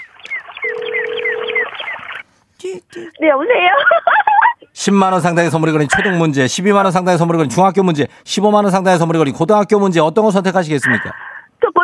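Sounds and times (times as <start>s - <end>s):
telephone dialing tones as a call is placed: 0.6s - 2.0s
speech: 2.9s - 4.2s, 4.8s - 11.3s
laughter: 3.6s - 4.7s, 5.8s - 6.4s, 10.8s - 11.8s.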